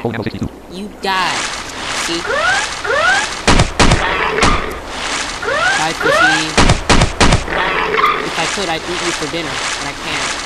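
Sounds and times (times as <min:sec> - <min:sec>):
speech: 0:00.0 - 0:03.3, 0:05.8 - 0:06.6, 0:07.5 - 0:10.4
dense noisy video game soundscape: 0:00.0 - 0:10.4
gunshot bursts in a video game: 0:02.2 - 0:04.7, 0:05.5 - 0:07.6.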